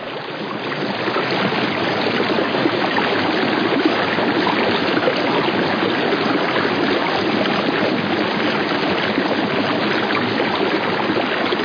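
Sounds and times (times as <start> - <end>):
water rushing through a rocky gorge channel in the upper Hudson: 0.8 - 11.6.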